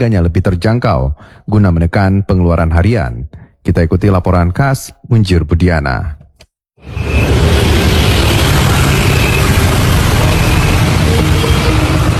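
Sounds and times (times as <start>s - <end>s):
speech: 0.0s - 6.2s
several vehicle engines idling at a gas station: 8.0s - 12.1s.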